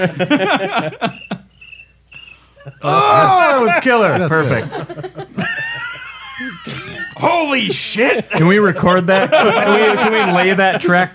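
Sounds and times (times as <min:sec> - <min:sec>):
speech: 0:00.0 - 0:01.3, 0:02.7 - 0:05.2, 0:07.2 - 0:11.1
laughter: 0:00.0 - 0:11.1
person imitating cricket chirps: 0:00.9 - 0:03.4.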